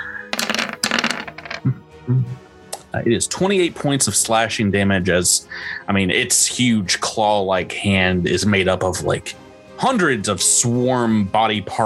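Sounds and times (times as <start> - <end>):
dice clattering and tumbling across a tabletop: 0.3 - 1.6
speech: 1.6 - 11.8.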